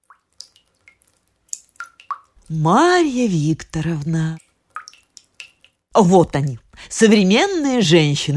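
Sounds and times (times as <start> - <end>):
water dripping from a tap in a bathroom: 0.0 - 6.6
speech: 2.5 - 4.4, 6.0 - 8.3.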